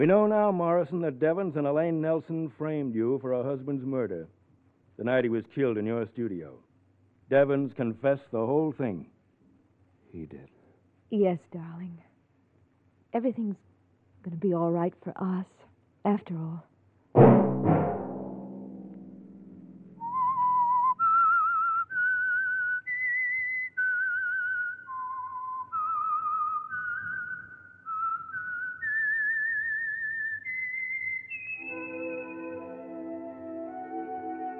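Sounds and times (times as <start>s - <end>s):
speech: 0.0s - 4.4s, 5.0s - 6.7s, 7.3s - 9.1s, 10.1s - 10.5s, 11.1s - 12.1s, 13.1s - 17.8s
two sharp opening hits: 17.2s - 20.1s
whistled slow melodic theme: 19.8s - 34.5s
soft instrumental chord: 31.6s - 34.5s.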